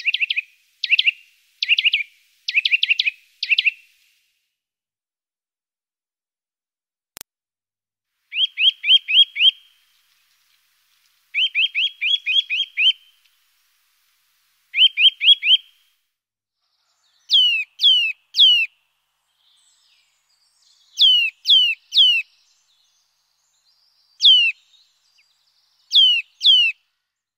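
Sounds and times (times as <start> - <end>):
Eurasian nuthatch calls of loud downslurred piping whistles: 0.0 - 4.0, 8.3 - 9.8, 11.3 - 13.3, 14.7 - 15.8, 16.8 - 18.7, 19.3 - 26.8.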